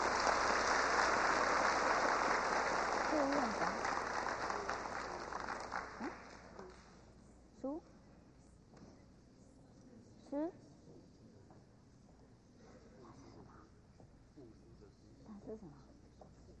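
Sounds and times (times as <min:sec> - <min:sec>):
large crowd applause: 0:00.0 - 0:06.6
voices: 0:03.0 - 0:06.7.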